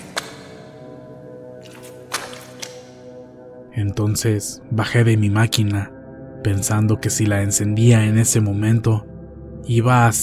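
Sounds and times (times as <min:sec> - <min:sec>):
rubber boots stepping through water running down ramps: 0:01.5 - 0:03.2
speech: 0:03.8 - 0:10.2.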